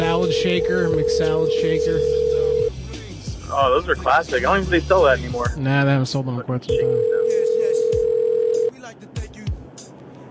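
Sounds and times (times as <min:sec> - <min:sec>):
speech: 0:00.0 - 0:02.2, 0:03.5 - 0:07.2
telephone ringing with electronic tone: 0:00.0 - 0:02.8, 0:06.7 - 0:08.7.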